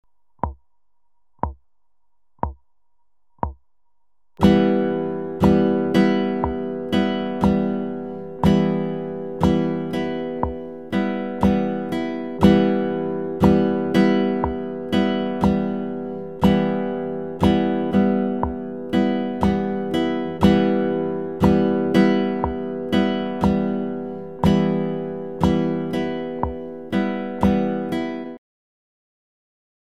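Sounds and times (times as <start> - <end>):
guitar strumming: 4.4 - 28.4.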